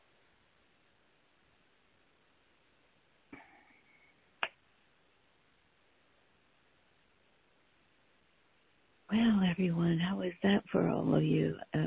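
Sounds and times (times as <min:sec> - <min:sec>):
finger snaps: 0:04.4 - 0:04.6
speech: 0:09.1 - 0:11.8.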